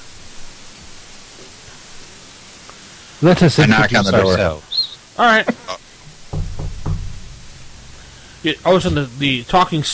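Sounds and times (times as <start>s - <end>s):
speech: 3.2s - 5.8s, 8.4s - 9.9s
solid knocks on a wooden door: 6.3s - 7.4s.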